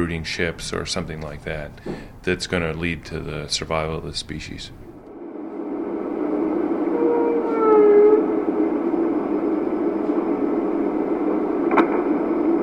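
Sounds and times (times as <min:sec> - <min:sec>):
speech: 0:00.0 - 0:04.8
steady underwater hiss: 0:00.0 - 0:12.6
underwater low moan-like whale tone: 0:06.4 - 0:08.8
underwater whale short rising whistles: 0:06.8 - 0:08.5
sharp underwater pop: 0:11.7 - 0:12.1.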